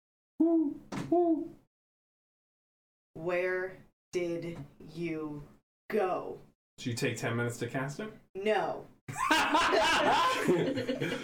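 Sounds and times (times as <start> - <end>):
person imitating owl hoots: 0.4 - 1.6
speech: 0.4 - 1.6, 3.2 - 11.2
laughter: 9.1 - 11.2.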